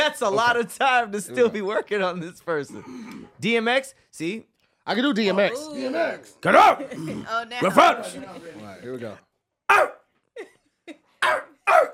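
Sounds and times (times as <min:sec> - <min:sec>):
speech: 0:00.2 - 0:11.9
man imitating dog barks: 0:06.4 - 0:06.9, 0:09.7 - 0:10.1, 0:11.2 - 0:11.9.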